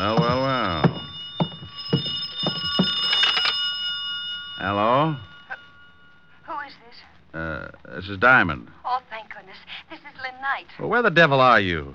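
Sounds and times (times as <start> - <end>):
telephone bell ringing with a shrill metallic tone: 0.0 - 6.2
speech: 8.0 - 8.8, 10.6 - 11.9.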